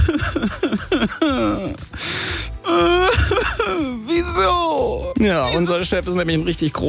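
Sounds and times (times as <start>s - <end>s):
person crying and whimpering in an office: 0.0s - 4.3s
speech: 1.0s - 2.2s, 3.7s - 6.8s.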